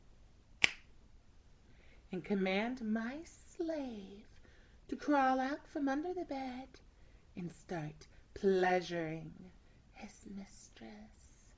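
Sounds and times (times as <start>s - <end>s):
finger snap beside a bed: 0.6s - 1.0s
speech: 2.1s - 4.3s, 4.9s - 6.8s, 7.4s - 11.2s.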